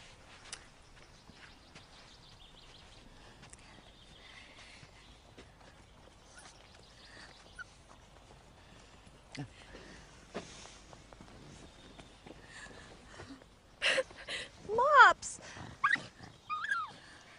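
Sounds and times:
soft steps: 0.0 - 14.8
small dog yapping and whimpering: 6.3 - 6.6, 15.8 - 17.0.

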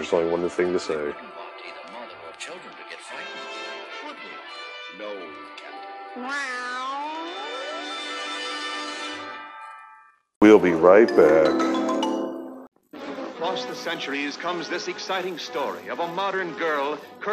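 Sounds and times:
speech: 0.0 - 1.4, 6.2 - 6.7, 10.5 - 11.7, 13.5 - 17.3
cat meowing: 6.1 - 8.2.

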